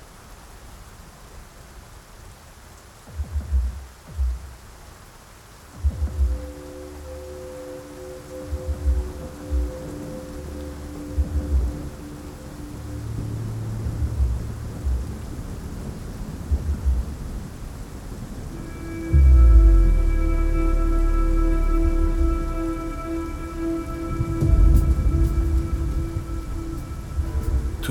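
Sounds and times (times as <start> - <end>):
heavy downpour: 0.0 - 27.9
low thunder rumbling: 8.4 - 27.9.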